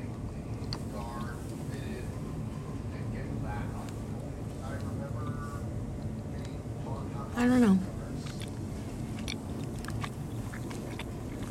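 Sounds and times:
constant low rumble of noise: 0.0 - 11.4
person chewing food with wet crunchy mouth sounds: 0.1 - 1.5, 8.1 - 11.4
speech: 7.4 - 7.9.

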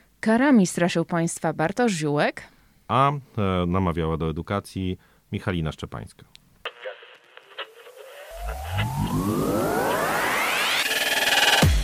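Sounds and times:
speech: 0.2 - 6.4
crackling radio static interference: 6.6 - 11.6
warbling tones sweeping upward: 8.2 - 11.6.

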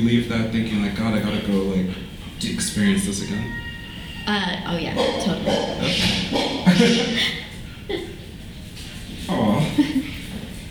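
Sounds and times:
speech: 0.0 - 8.1
neighbour's dog barking, whimpering, yelping and whining: 4.9 - 7.0
laughter: 6.6 - 8.3, 9.4 - 10.2.

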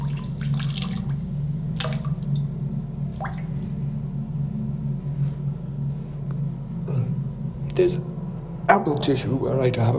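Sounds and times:
thin stream of urine trickling into toilet water: 0.0 - 2.4
steady low mechanical hum: 0.0 - 9.9
speech: 7.8 - 8.1, 8.7 - 9.9.

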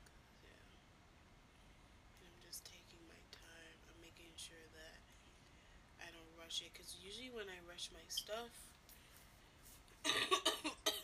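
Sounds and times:
speech: 6.0 - 8.7
rough chesty coughing fit: 10.0 - 11.0.

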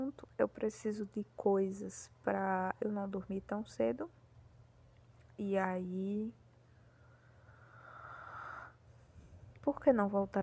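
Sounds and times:
low steady hum: 0.0 - 10.4
speech: 0.1 - 4.2, 5.4 - 6.4, 9.7 - 10.4
long breathy exhale: 6.9 - 9.4.

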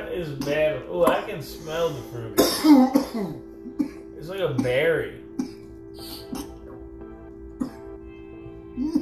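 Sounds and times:
steady low electrical hum: 0.0 - 8.9
speech: 0.2 - 5.2
short dry coughs: 2.4 - 5.7, 7.6 - 7.9.

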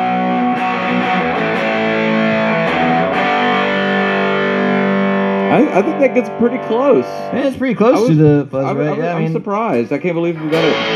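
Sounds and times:
electric guitar through a fuzz pedal playing sustained chords: 0.0 - 10.9
speech: 5.6 - 10.9.

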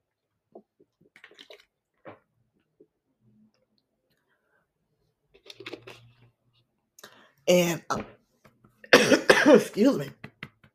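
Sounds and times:
person slurping water: 0.6 - 2.3
speech: 7.5 - 8.1, 9.5 - 10.2.

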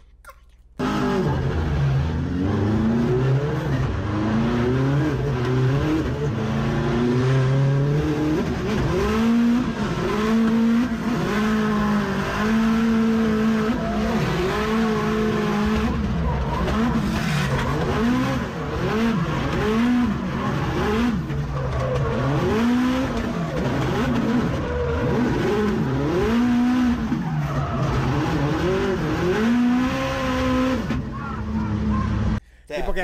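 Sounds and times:
race car engine heard onboard during a race: 0.8 - 32.4
race car tire squeal: 11.5 - 32.4.

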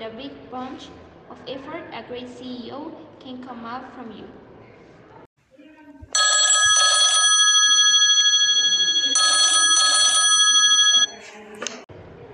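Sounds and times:
speech: 0.0 - 4.4
telephone ringing: 6.2 - 11.2.

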